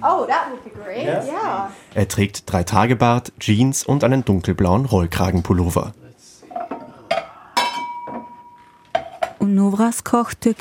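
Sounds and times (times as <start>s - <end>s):
speech: 0.1s - 6.0s, 9.7s - 10.5s
drinking glasses clinking as taken from a kitchen cupboard: 6.5s - 9.3s.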